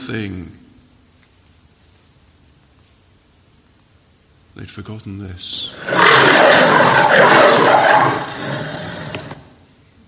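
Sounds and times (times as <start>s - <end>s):
speech: 0.1s - 0.6s, 4.6s - 8.8s
lion roaring: 5.6s - 9.5s.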